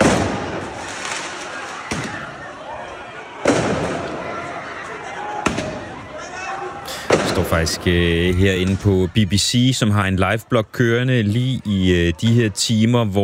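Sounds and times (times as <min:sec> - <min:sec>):
fireworks going off in an open street: 0:00.0 - 0:02.4, 0:03.4 - 0:04.4, 0:05.4 - 0:06.0, 0:07.0 - 0:07.8
crowd and street noise with indistinct voices: 0:00.0 - 0:13.2
speech: 0:07.5 - 0:13.2.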